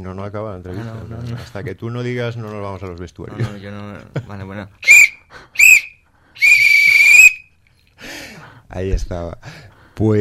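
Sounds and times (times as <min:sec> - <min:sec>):
speech: 0:00.0 - 0:05.0, 0:08.7 - 0:10.1
referee whistle blasts ending an interview: 0:04.8 - 0:07.4.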